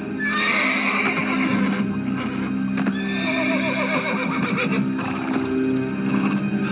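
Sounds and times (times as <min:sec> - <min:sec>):
horse neighing and whinnying: 0:00.2 - 0:06.5
hoof clatter: 0:02.7 - 0:06.6.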